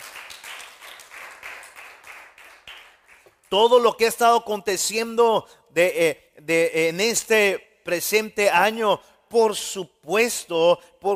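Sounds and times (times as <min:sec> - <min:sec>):
audience applauding: 0:00.0 - 0:03.3
speech: 0:03.5 - 0:11.1.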